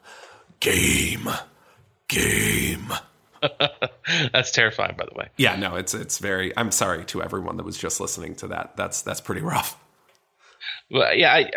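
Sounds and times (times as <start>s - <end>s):
voice imitating heavy breathing with a small noise on each breath: 0.0s - 3.1s
speech: 0.6s - 1.5s, 2.1s - 9.8s, 10.9s - 11.5s.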